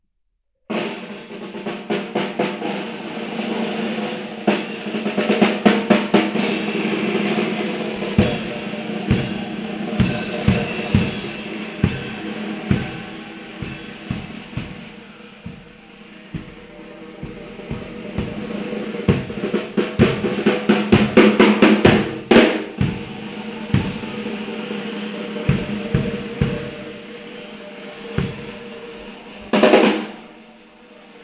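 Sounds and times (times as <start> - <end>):
circular drums in holophonic recording: 0.7 - 31.2.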